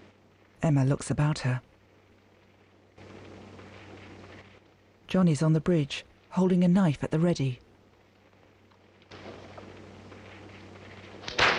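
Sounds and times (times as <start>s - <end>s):
low rumble: 0.0s - 11.5s
speech: 0.6s - 1.7s, 5.1s - 7.6s
whip slapped down to urge a horse on: 11.2s - 11.5s.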